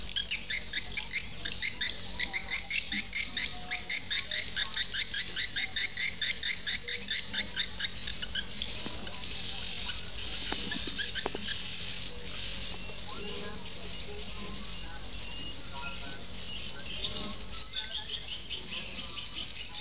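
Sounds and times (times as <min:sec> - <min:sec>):
farmed swiftlet twittering calls in Asia: 0:00.0 - 0:19.7.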